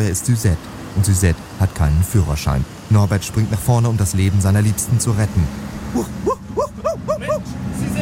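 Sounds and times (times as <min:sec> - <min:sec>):
speech: 0:00.0 - 0:07.5
voice mimicking a company car speeding: 0:05.8 - 0:08.0.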